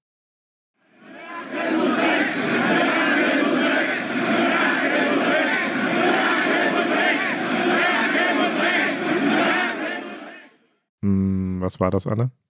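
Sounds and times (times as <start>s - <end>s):
large protest crowd chanting political slogans in unison: 0.8s - 10.6s
speech: 11.7s - 12.4s.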